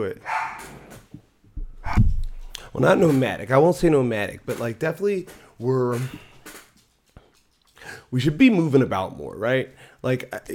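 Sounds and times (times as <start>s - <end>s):
speech: 0.0s - 0.7s, 2.8s - 6.3s, 8.1s - 10.5s
dog barking: 0.2s - 0.7s.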